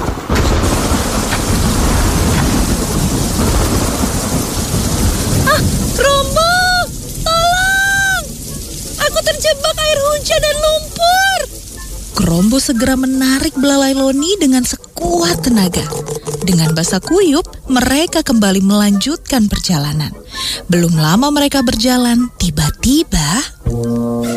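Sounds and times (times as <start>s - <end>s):
deep thunderous rumble: 0.0s - 23.4s
heavy rain pouring down: 0.0s - 24.3s
person crying out loudly: 5.5s - 8.3s
speech: 12.3s - 24.3s.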